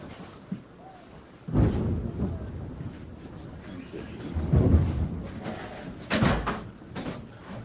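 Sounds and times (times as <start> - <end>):
steady rain: 0.0 - 7.6
deep thunder rumbling: 1.4 - 7.2.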